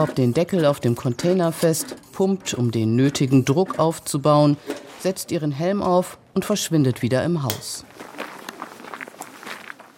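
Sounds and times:
speech: 0.0s - 8.0s
man's footsteps scuffing on a hard gritty surface around his house: 7.8s - 9.9s.

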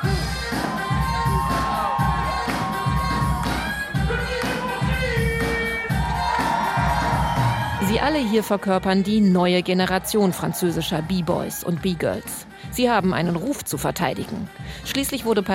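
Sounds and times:
crowd cheering and shouting at a breakdance battle in a cultural centre hall in Paris: 0.0s - 12.1s
steady thumping beat: 0.0s - 15.5s
speech: 8.0s - 15.5s.

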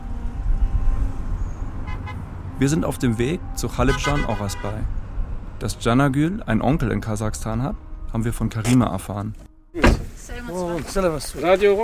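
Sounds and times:
car horn honking: 0.0s - 2.6s, 3.4s - 5.0s
city traffic rumble: 0.0s - 11.8s
speech: 2.6s - 5.0s, 5.6s - 11.8s.

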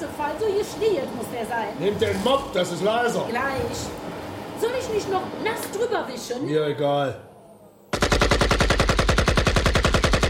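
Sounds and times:
speech: 0.6s - 7.3s
rapid automatic gunfire: 7.9s - 10.2s.

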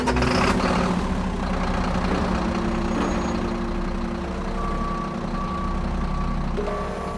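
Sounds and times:
truck engine idling and rumbling: 0.0s - 7.1s
thin electronic beep tone: 4.6s - 7.1s.

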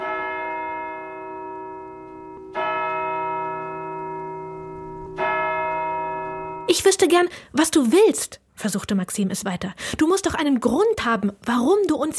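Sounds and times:
deep resonant bell striking: 0.0s - 6.7s
speech: 6.7s - 12.1s.

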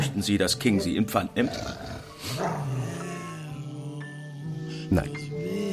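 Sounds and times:
speech: 0.2s - 2.8s, 4.9s - 5.6s
dog growling low: 0.7s - 3.3s.

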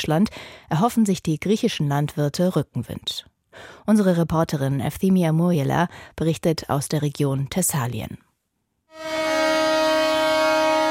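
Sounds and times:
speech: 0.0s - 8.2s
convoy of tractors and pickups honking horns: 8.9s - 10.8s.

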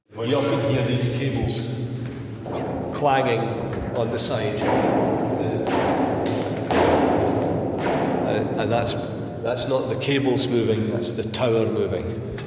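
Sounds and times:
speech: 0.2s - 5.8s, 8.4s - 12.4s
cables banging against inside of wind turbine tower: 1.1s - 10.2s.

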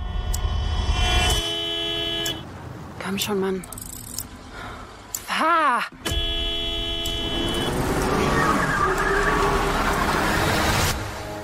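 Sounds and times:
car horn honking in traffic: 0.0s - 2.4s, 6.0s - 7.9s
engine and road noise: 0.0s - 11.4s
speech: 3.1s - 3.8s.

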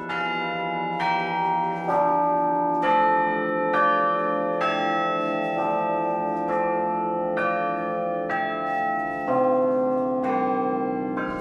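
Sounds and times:
tower carillon bells played from a wooden keyboard struck with fists: 0.0s - 11.4s.

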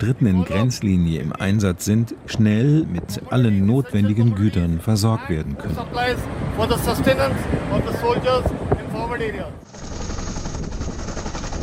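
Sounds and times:
speech: 0.0s - 9.9s
military helicopter rotor chopping with whining engine, flying overhead: 9.6s - 11.6s.

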